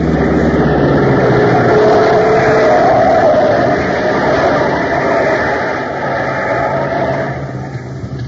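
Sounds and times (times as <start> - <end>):
speeding car with loud engine roaring as it rushes past: 0.0 - 8.1.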